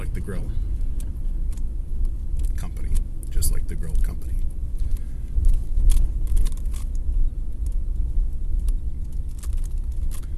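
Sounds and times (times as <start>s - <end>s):
low road rumble inside a moving pickup truck: 0.0s - 10.3s
pickup truck engine drone: 0.0s - 10.3s
pickup truck tire noise: 0.0s - 10.3s
speech: 0.3s - 0.7s, 3.5s - 4.6s
faint clicks and rattles inside a pickup truck cabin: 0.3s - 10.3s.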